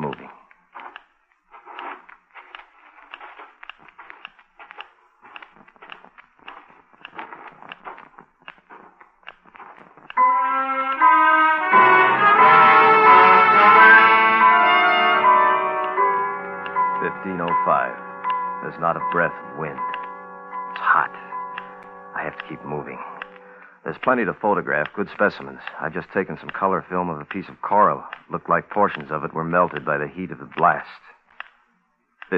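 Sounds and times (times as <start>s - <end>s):
Geiger counter clicking: 0.0s - 11.1s, 16.6s - 31.6s
sustained musical chord: 10.2s - 23.7s
speech: 19.1s - 19.8s, 22.3s - 23.2s, 23.8s - 31.2s.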